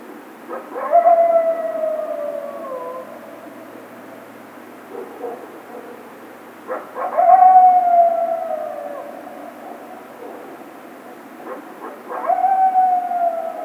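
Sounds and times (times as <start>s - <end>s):
coyote howling: 0.6s - 4.0s, 6.7s - 10.6s, 11.5s - 13.6s.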